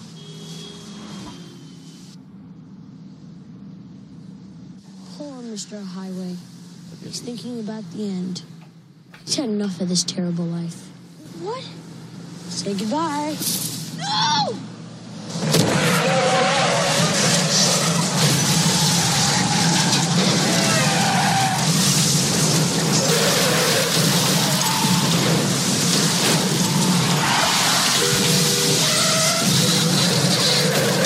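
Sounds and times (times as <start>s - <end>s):
speech: 5.2s - 8.6s, 9.2s - 11.8s, 12.6s - 14.7s
tires squealing: 11.9s - 31.0s
cars skidding and crashing into each other: 12.2s - 31.0s.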